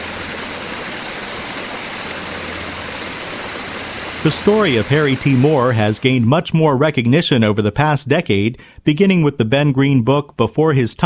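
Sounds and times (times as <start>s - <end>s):
water pouring over a memorial fountain in a meditation garden: 0.0s - 6.3s
speech: 4.2s - 11.0s.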